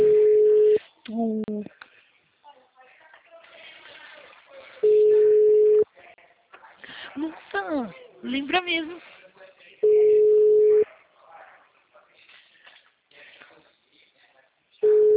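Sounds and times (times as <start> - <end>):
telephone ringback tone on a call: 0.0 - 0.8, 4.8 - 5.8, 9.8 - 10.8, 14.8 - 15.1
speech: 8.5 - 9.1.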